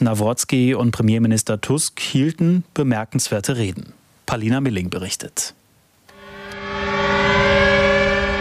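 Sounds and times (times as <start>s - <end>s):
speech: 0.0s - 5.6s
commemorative sirens sounding over memorial site: 6.1s - 8.3s.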